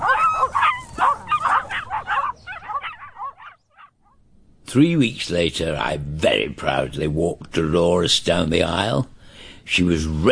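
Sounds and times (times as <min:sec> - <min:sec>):
puppies yipping and barking: 0:00.0 - 0:03.9
speech: 0:04.7 - 0:09.1, 0:09.7 - 0:10.3.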